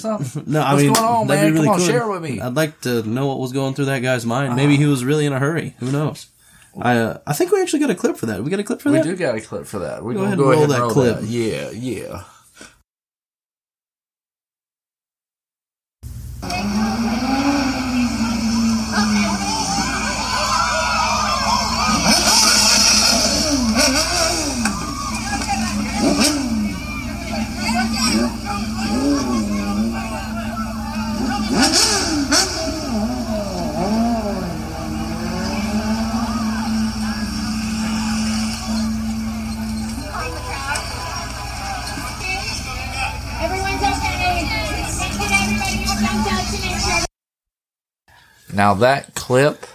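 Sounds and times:
speech: 0:00.0 - 0:12.7, 0:48.6 - 0:49.7
sport motorcycle engine revving: 0:16.4 - 0:47.0.

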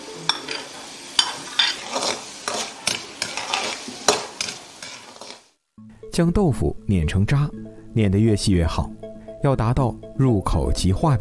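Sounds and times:
diced vegetables sizzling in hot oil: 0:00.0 - 0:05.6
utensil scraping against the pan while stir-frying: 0:00.3 - 0:05.5
speech: 0:06.2 - 0:11.1.

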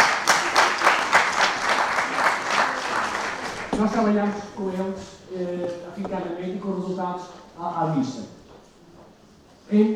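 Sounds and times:
audience applauding a team at a public event: 0:00.0 - 0:03.8
speech: 0:03.8 - 0:08.4, 0:09.7 - 0:09.9.

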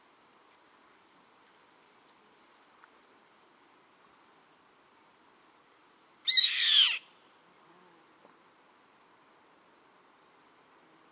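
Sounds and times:
Yellow-headed Caracara (Milvago chimachima) raspy grating scream: 0:06.3 - 0:07.0.

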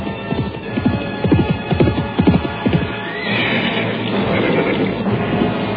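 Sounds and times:
horse hooves as a rider slows his horse: 0:00.0 - 0:05.6.

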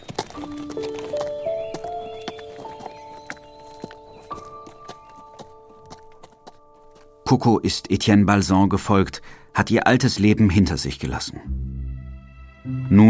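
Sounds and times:
horse hooves clip-clopping as a rider mounts: 0:00.0 - 0:07.3
speech: 0:07.3 - 0:11.6, 0:12.9 - 0:13.0.

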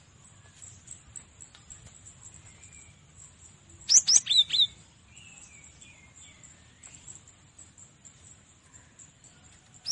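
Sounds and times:
cinereous tit whistling song: 0:03.9 - 0:04.8.

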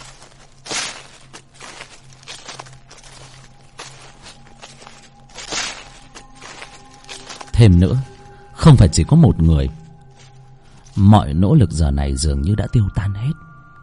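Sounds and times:
footsteps crunching and rustling through dry leaves: 0:00.0 - 0:12.0
speech: 0:07.6 - 0:09.8, 0:11.0 - 0:13.5.

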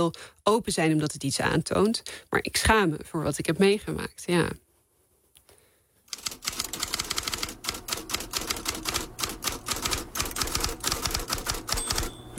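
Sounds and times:
speech: 0:00.0 - 0:04.6
typewriter typing: 0:06.1 - 0:12.2.

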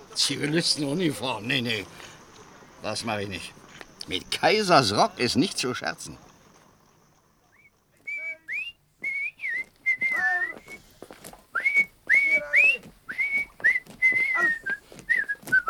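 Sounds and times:
speech: 0:00.2 - 0:02.2, 0:02.8 - 0:06.3
person whistling a lively tune inside a barracks: 0:08.1 - 0:10.8, 0:11.6 - 0:15.6.

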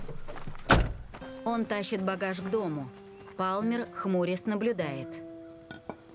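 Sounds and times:
heavy car door flung open: 0:00.7 - 0:01.1
speech: 0:01.5 - 0:05.2.

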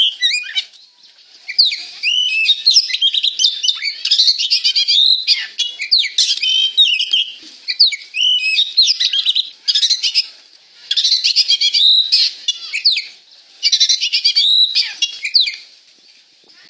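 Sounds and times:
Oriental magpie-robin singing vigorously: 0:00.0 - 0:10.3, 0:10.9 - 0:15.6.

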